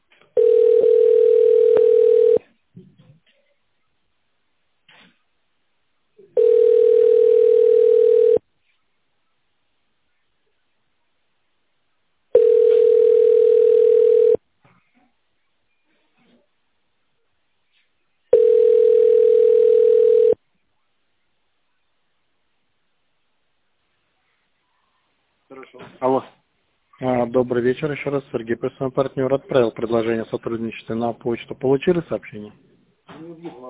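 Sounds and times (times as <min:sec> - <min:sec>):
telephone ringing tone while caller waits on hold: 0:00.4 - 0:02.4, 0:06.3 - 0:08.4, 0:12.3 - 0:14.4, 0:18.3 - 0:20.4
speech: 0:27.4 - 0:32.7.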